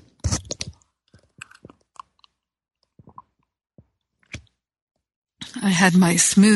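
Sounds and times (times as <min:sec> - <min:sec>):
person sipping tea: 0:00.0 - 0:03.5
gulps and swallows: 0:00.0 - 0:04.5
speech: 0:05.6 - 0:06.5.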